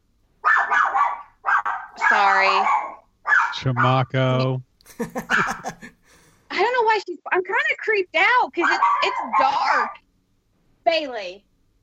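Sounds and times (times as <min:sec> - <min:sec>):
dog barking: 0:00.4 - 0:04.1, 0:05.2 - 0:05.8, 0:08.6 - 0:10.0
speech: 0:03.6 - 0:05.6, 0:06.9 - 0:10.0, 0:10.9 - 0:11.5
laughter: 0:04.0 - 0:06.2.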